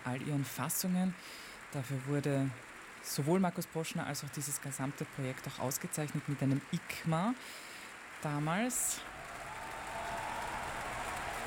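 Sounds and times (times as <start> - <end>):
speech: 0.0 - 9.2
concert audience applause for wind section: 7.6 - 11.4.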